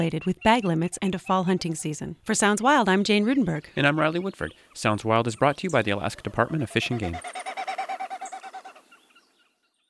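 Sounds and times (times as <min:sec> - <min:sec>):
speech: 0:00.0 - 0:07.6
Wilson's Snipe winnowing in flight with tail feathers: 0:00.0 - 0:09.4.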